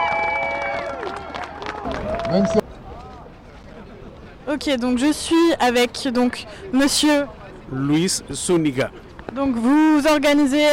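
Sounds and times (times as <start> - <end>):
crowd clapping at a solidarity march: 0.0 - 2.6
speech: 2.3 - 2.6, 4.5 - 10.7.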